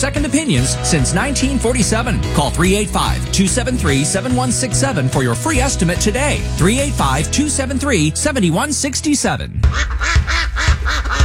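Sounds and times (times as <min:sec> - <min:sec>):
speech: 0:00.0 - 0:11.2
waterfowl such as geese and grebes honking at a bird refuge in Box Elder County, Utah, in spring: 0:09.7 - 0:11.2.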